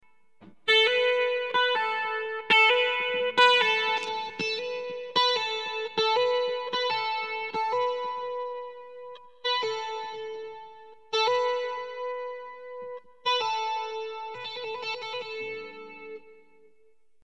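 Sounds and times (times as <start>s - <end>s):
guitar hammer-on and pull-off: 0.4s - 16.2s.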